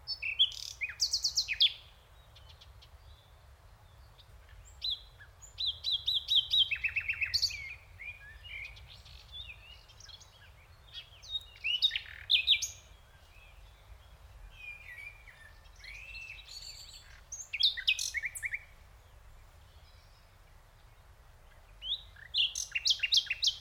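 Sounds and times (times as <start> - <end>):
Common nightingale Luscinia megarhynchos song: 0.0 - 23.5.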